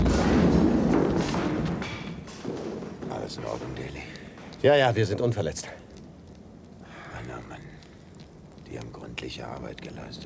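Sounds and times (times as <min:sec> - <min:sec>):
explosion setting off a large fire: 0:00.0 - 0:03.4
speech: 0:04.6 - 0:05.8, 0:08.7 - 0:10.2.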